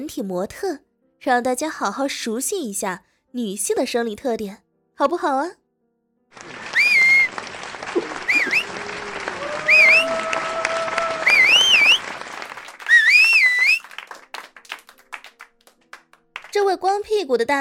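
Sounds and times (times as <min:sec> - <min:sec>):
speech: 0:00.0 - 0:05.6, 0:06.3 - 0:06.6, 0:16.6 - 0:17.6
clapping: 0:06.3 - 0:16.8
crowd clamor: 0:06.4 - 0:12.3
group of male students whistling loudly at a boys' school: 0:06.6 - 0:07.4, 0:08.0 - 0:08.8, 0:09.4 - 0:10.4, 0:11.1 - 0:12.2, 0:12.8 - 0:13.9.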